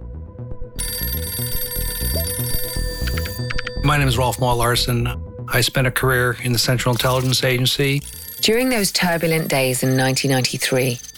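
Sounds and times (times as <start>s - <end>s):
rhythmic low music bed: 0.0s - 11.0s
bright metallic telephone bell ringing: 0.8s - 4.7s, 8.0s - 11.1s
speech: 3.9s - 11.1s.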